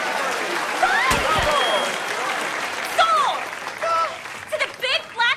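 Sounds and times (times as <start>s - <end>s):
scattered cheers: 0.0s - 3.9s
audience applauding loudly: 0.0s - 5.2s.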